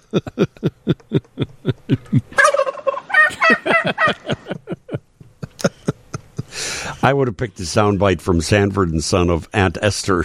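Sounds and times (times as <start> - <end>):
laughter: 0.0 - 7.0
speech: 0.1 - 1.1, 7.0 - 10.2
turkey gobbling: 2.4 - 4.5.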